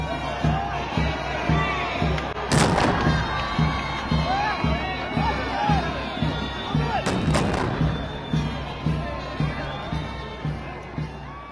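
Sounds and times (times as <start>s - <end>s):
crowd murmur: 0.0s - 11.4s
rhythmic ceremonial drumbeat: 0.0s - 11.4s
ceremonial cannon salute blasts: 2.5s - 3.2s.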